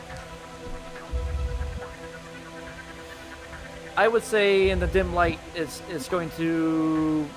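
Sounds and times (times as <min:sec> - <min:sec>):
rain sound effect: 0:00.0 - 0:07.3
low rumbling: 0:00.6 - 0:02.6, 0:04.6 - 0:05.9
speech: 0:04.0 - 0:07.3.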